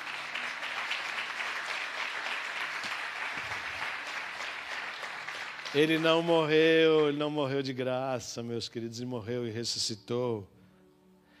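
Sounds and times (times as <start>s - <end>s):
congregation applauding during a Sunday church service: 0.0s - 7.8s
speech: 5.7s - 10.6s.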